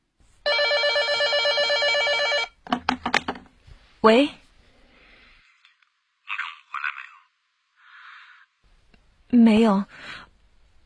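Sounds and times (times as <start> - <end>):
telephone bell ringing: 0.4 - 2.6
speech: 4.0 - 4.4, 9.6 - 10.0.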